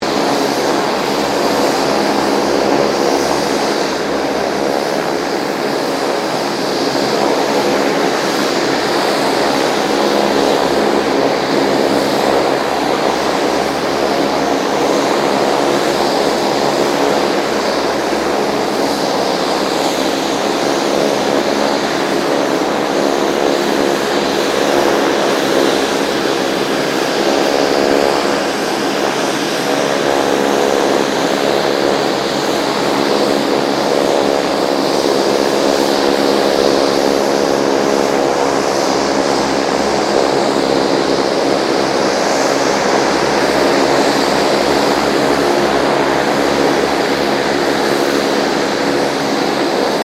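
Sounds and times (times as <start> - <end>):
2007 King Air 350 aircraft idling: 0.0 - 50.0.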